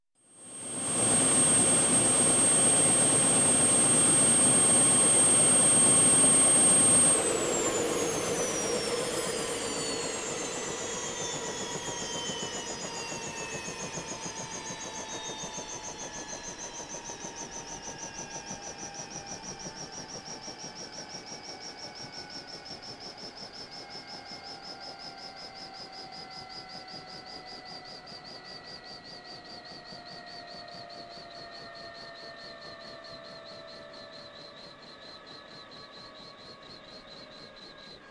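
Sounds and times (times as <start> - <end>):
helicopter engine shutting off: 0.2 - 38.0.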